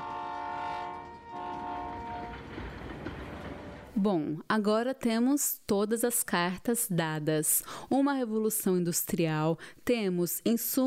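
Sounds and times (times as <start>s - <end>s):
loud train horn blaring in long sustained blasts: 0.0s - 2.5s
moving train rumbling and rattling: 0.0s - 4.0s
speech: 4.0s - 10.8s.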